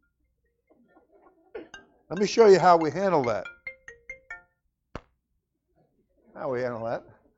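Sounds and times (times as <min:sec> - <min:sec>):
mobile phone ringtone jingle during church chapel service: 0:01.7 - 0:04.7
speech: 0:02.1 - 0:03.6, 0:06.4 - 0:07.1.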